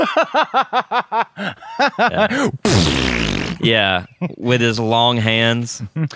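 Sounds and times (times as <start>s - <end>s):
speech: 0.0s - 6.1s
rhythmic chuckling vocal bursts: 2.6s - 3.7s
voice imitating a hot wet fart: 2.6s - 3.7s.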